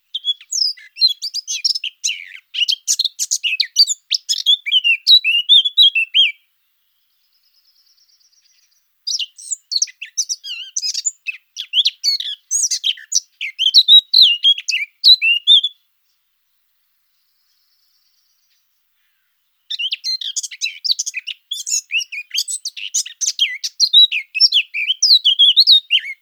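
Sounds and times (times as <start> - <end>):
Eurasian blackcap singing: 0.0 - 6.4, 8.0 - 15.8, 19.7 - 26.1.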